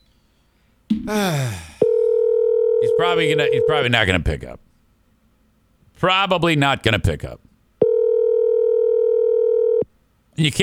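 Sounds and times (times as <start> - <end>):
speech: 1.0 - 1.7, 3.0 - 4.6, 6.0 - 7.4, 10.4 - 10.6
telephone dial tone: 1.8 - 2.9, 7.8 - 9.8.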